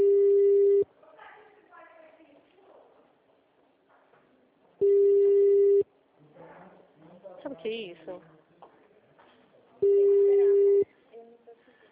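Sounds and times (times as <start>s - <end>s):
telephone ringback tone from a call being placed: 0.0s - 0.8s, 4.8s - 5.8s, 9.8s - 10.8s
speech: 7.6s - 8.4s.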